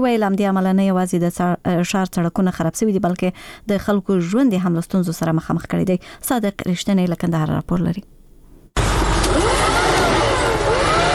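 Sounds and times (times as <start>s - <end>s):
speech: 0.0s - 8.2s
vacuum cleaning machine sweeping dust and soil from a shop in Kandahar: 8.8s - 11.1s.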